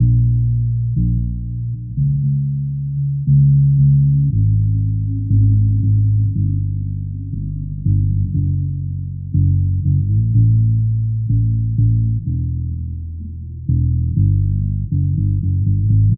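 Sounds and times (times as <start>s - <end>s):
sad bass loop: 0.0s - 16.1s.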